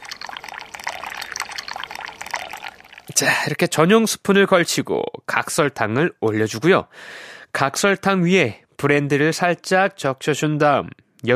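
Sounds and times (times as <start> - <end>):
drip coffee pouring into a cup for a café royal coffee cocktail in Paris: 0.0 - 3.3
speech: 3.1 - 11.3.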